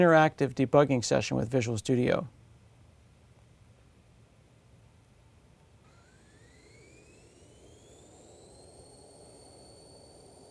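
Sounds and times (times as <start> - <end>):
speech: 0.0 - 2.4
video game airplane engine spooling up for takeoff: 5.9 - 10.4.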